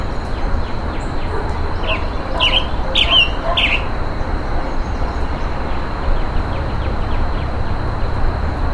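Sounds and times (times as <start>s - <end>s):
low background noise: 0.0s - 8.7s
steady high whine: 0.0s - 8.7s
roadside hawk calling while being mobbed in humid tropical forest: 1.3s - 4.0s.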